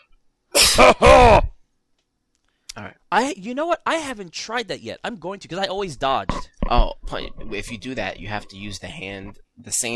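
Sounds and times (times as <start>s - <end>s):
person coughing: 0.6s - 1.5s
speech: 0.8s - 1.5s, 3.2s - 9.9s.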